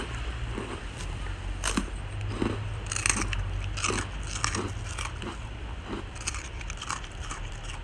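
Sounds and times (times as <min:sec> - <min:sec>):
crunchy Japanese rice crackers being bitten and chewed: 0:00.0 - 0:07.8
steady low hum: 0:00.0 - 0:07.8.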